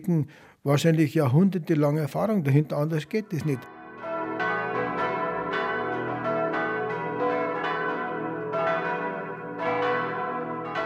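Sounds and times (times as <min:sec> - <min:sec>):
speech: 0:00.0 - 0:03.8
six church bells pealing from a tower in Au bei Aibling: 0:03.3 - 0:10.8.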